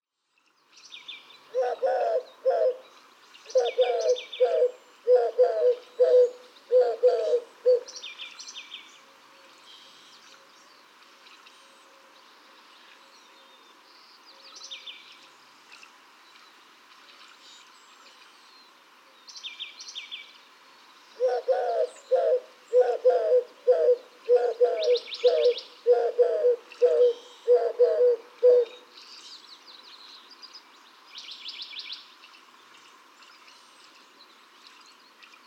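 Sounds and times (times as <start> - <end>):
Eurasian Collared-dove: 1.5 - 8.0, 21.2 - 28.8.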